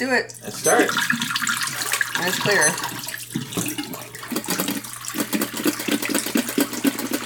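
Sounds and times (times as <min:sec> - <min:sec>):
speech: 0:00.0 - 0:01.5, 0:02.2 - 0:03.5
pre-soak water pouring out of a film developing tank into a sink: 0:00.3 - 0:07.2.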